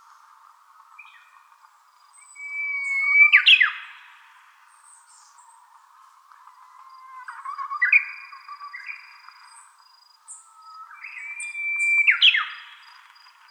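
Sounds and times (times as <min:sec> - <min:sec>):
Japanese bush warbler singing: 0:00.9 - 0:04.0, 0:07.8 - 0:12.9.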